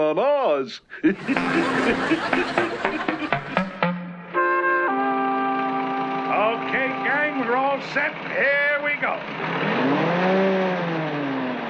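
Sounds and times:
speech: 0.0s - 3.1s
laughter: 0.9s - 3.8s
car motor revving: 5.4s - 11.6s.

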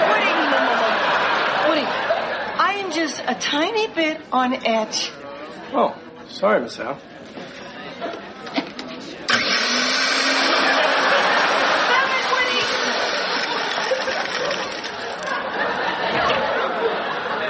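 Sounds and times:
laughter: 0.0s - 2.6s, 9.8s - 17.4s
speech: 3.2s - 7.4s
electric blender running: 9.3s - 15.3s.

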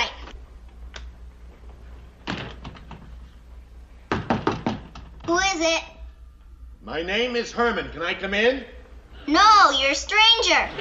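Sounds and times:
knocking on a door: 4.1s - 5.3s
speech: 5.3s - 5.9s, 6.8s - 10.7s.

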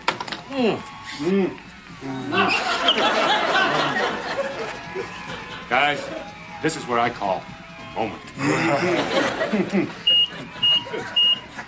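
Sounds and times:
murmuring voices: 0.4s - 11.6s
speech: 0.5s - 11.2s
people chuckling: 2.3s - 6.3s, 8.3s - 11.6s
fire alarm beeps: 10.0s - 11.6s.

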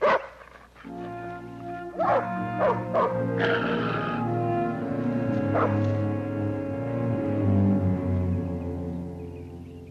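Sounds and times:
female dog barking in short sharp bursts: 0.0s - 0.4s, 2.0s - 3.2s, 5.5s - 5.8s
steady sustained musical drone: 0.8s - 9.9s.

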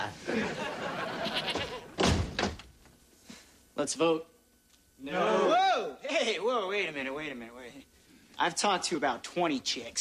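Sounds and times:
laughter: 0.0s - 2.0s
goat bleating: 1.2s - 1.8s
speech: 3.8s - 4.3s, 5.0s - 9.9s.

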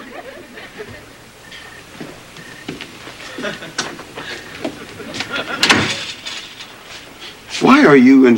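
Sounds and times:
laughter: 0.0s - 1.3s, 3.1s - 6.4s
speech: 3.4s - 3.9s, 7.6s - 8.3s
door closing with a sharper clunk: 3.8s - 6.2s.

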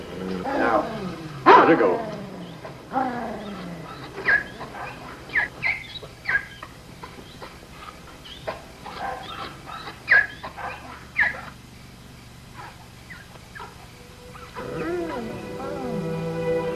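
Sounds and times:
dog whining: 0.0s - 11.6s, 12.6s - 16.6s
speech: 1.7s - 2.2s.

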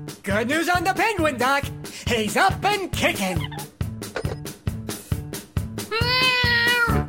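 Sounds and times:
speech: 0.3s - 3.6s
cat meowing: 5.9s - 7.0s.

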